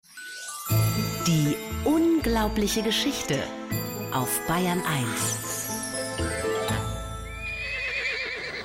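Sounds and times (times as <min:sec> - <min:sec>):
speech: 0:00.7 - 0:05.4
horse whinnying: 0:06.2 - 0:08.6.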